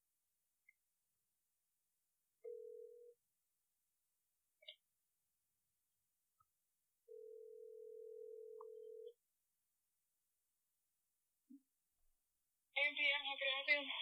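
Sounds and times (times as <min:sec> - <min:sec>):
steady electronic phone ringback tone: 0:02.4 - 0:03.1, 0:07.1 - 0:09.1
speech: 0:12.8 - 0:13.9.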